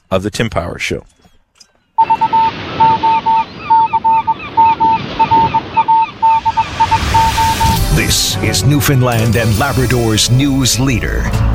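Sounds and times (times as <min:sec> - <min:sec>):
speech: 0:00.1 - 0:01.2, 0:08.0 - 0:11.5
flock of geese honking as they fly off: 0:02.0 - 0:08.0
steady rushing background: 0:03.1 - 0:10.2.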